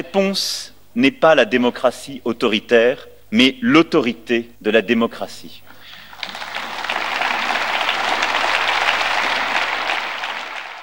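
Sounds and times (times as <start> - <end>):
speech: 0.0 - 5.6
applause from a sizable crowd after a speech: 5.7 - 10.8.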